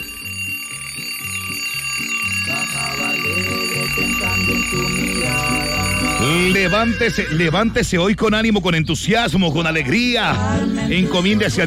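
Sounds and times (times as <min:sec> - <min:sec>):
alarm clock ringing with repeating electronic tones: 0:00.0 - 0:07.8
speech: 0:04.4 - 0:11.6.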